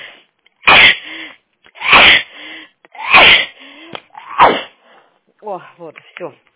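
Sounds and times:
woman sneezing: 0.6 - 2.3, 3.0 - 3.6, 4.2 - 4.7
speech: 5.6 - 6.5.

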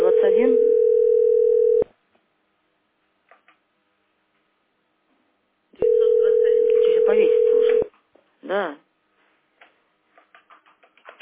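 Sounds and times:
telephone ringing tones after dialing a mobile phone number: 0.0 - 1.9, 5.8 - 7.9.

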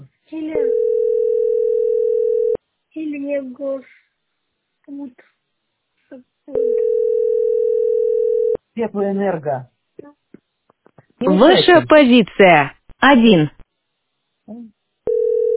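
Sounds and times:
telephone ringback tone of an outgoing call: 0.6 - 2.6, 6.5 - 8.6, 15.1 - 15.5
speech: 3.4 - 4.0, 4.9 - 5.4, 6.1 - 7.0, 8.8 - 10.2, 11.2 - 13.6.

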